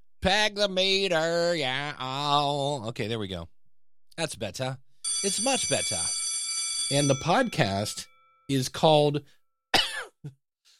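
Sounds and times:
speech: 0.2s - 3.6s, 4.2s - 6.2s, 6.9s - 9.4s
person coughing: 9.8s - 10.4s.

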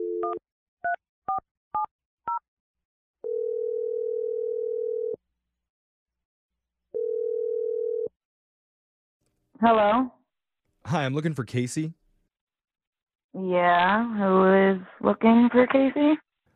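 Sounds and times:
telephone dial tone: 0.0s - 0.4s, 3.2s - 5.2s, 6.9s - 8.2s
speech: 0.3s - 1.4s, 9.6s - 10.2s, 10.9s - 12.0s, 13.4s - 16.2s.

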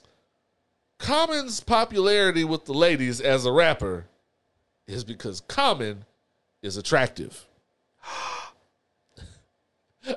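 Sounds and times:
speech: 1.1s - 4.1s, 4.9s - 8.2s
person gasping: 8.0s - 8.6s.

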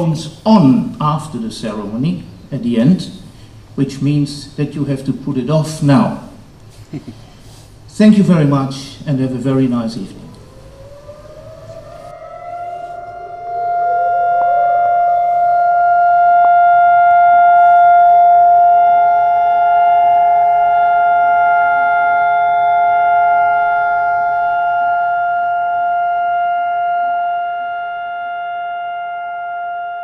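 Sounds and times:
speech: 0.0s - 3.2s, 3.8s - 6.3s, 6.9s - 7.2s, 8.0s - 10.2s
laughter: 6.8s - 7.2s
memorial siren wailing at a remembrance ceremony: 9.6s - 30.0s.

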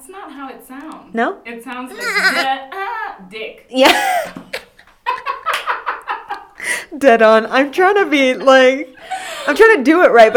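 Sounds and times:
speech: 0.3s - 4.4s, 7.0s - 10.3s
goat bleat sound effect censoring a swear word: 1.9s - 2.5s.

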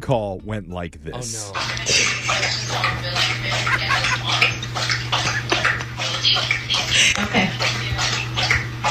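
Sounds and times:
constant low electrical hum: 0.0s - 8.8s
speech: 0.1s - 4.9s
laughter: 1.5s - 7.9s
dog lapping water from its bowl beside a work desk: 1.5s - 8.8s.

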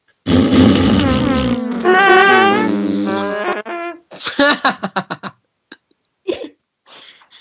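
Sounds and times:
voice blowing a buzzy raspberry imitating a fart: 0.2s - 4.0s.

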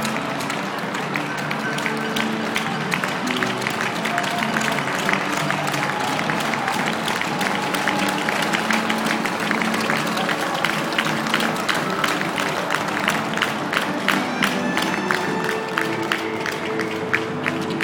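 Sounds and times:
marathon crowd roar: 0.0s - 17.8s
people clapping: 0.0s - 17.8s
voices: 0.0s - 17.8s
bright whistle-like cheers: 4.0s - 12.6s.

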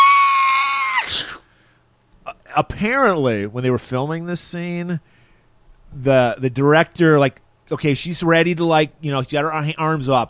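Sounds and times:
voice imitating a banshee shriek: 0.0s - 1.4s
speech: 1.1s - 1.4s, 2.6s - 5.2s, 5.9s - 10.2s.

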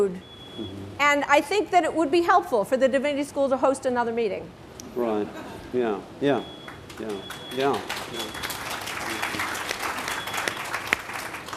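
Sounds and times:
speech: 0.0s - 8.5s
sharp individual claps: 6.6s - 11.5s
room full of people applauding: 6.9s - 11.5s.

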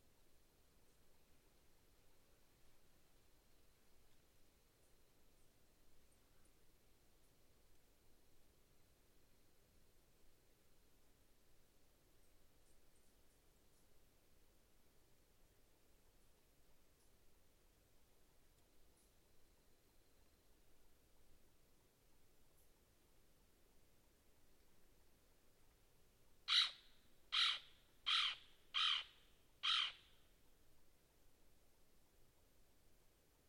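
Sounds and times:
soft low hiss at night in the outback: 0.0s - 33.4s
faint ticks: 12.2s - 14.0s, 16.1s - 17.4s, 18.4s - 19.4s
loud sharp bright calls: 26.5s - 30.0s.

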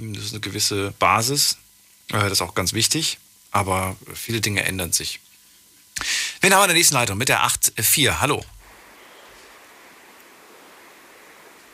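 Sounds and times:
speech: 0.1s - 5.3s, 6.0s - 8.6s
car road and engine rumble through a phone line: 8.6s - 11.7s.

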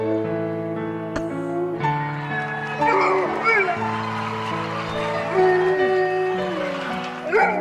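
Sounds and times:
steady instrumental music: 0.0s - 7.5s
dog howling in tune with music: 2.7s - 4.0s, 4.6s - 7.5s.

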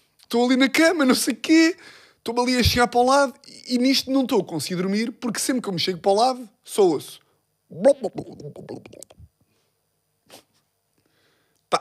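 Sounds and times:
speech: 0.3s - 9.3s
voice imitating a hot water bottle in a bed sloshing: 8.0s - 9.3s.

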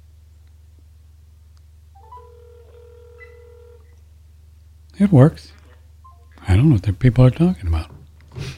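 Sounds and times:
steady low electrical hum: 0.0s - 8.5s
telephone line tones while dialing a toll-free 800 number: 2.0s - 4.0s
speech: 5.0s - 5.6s, 6.5s - 7.9s.

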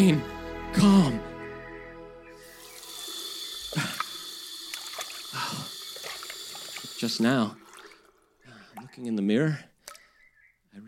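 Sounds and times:
speech: 0.0s - 1.3s, 7.0s - 7.6s, 9.0s - 9.7s
tap water running in a bathroom: 2.4s - 8.4s
hands splashing water while washing face: 2.5s - 9.1s.

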